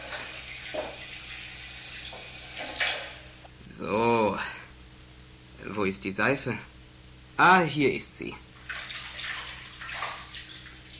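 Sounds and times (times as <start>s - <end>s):
cold water running from a tap: 0.0s - 3.4s, 8.6s - 10.9s
speech: 5.8s - 6.7s, 7.4s - 8.5s.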